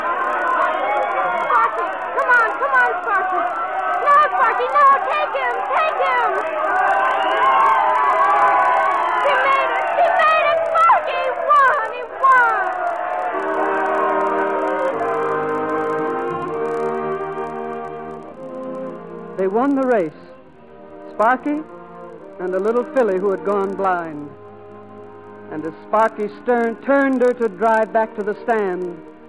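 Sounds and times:
racetrack crowd shouting and screaming: 0.0s - 18.9s
speech: 19.4s - 20.3s, 21.2s - 21.7s, 22.4s - 24.4s, 25.5s - 29.1s.

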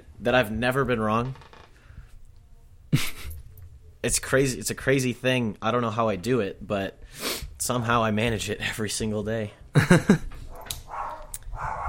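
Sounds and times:
speech: 0.2s - 1.5s, 4.0s - 10.3s
dogs barking: 10.5s - 11.8s.

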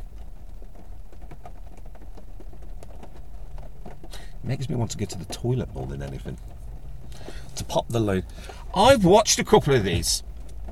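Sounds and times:
steady rain drumming on a parked car heard from inside: 0.0s - 10.7s
low rumbling hum: 3.7s - 10.7s
speech: 4.4s - 6.6s, 7.6s - 10.3s.

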